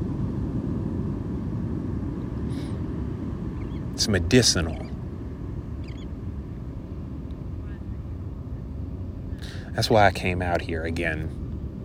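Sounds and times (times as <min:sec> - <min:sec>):
airplane passing overhead at the beach: 0:00.0 - 0:11.8
faint higher whine: 0:00.0 - 0:11.8
speech: 0:04.0 - 0:04.9, 0:09.8 - 0:11.4.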